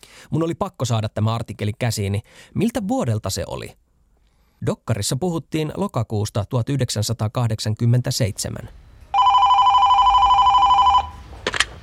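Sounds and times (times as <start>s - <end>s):
speech: 0.3s - 3.8s, 4.6s - 8.8s
telephone ring with a rapid trilling buzz: 9.1s - 11.2s.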